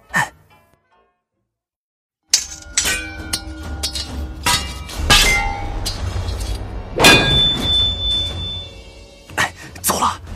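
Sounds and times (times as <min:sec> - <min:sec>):
large bronze bell struck with a hammer: 0:02.3 - 0:08.9.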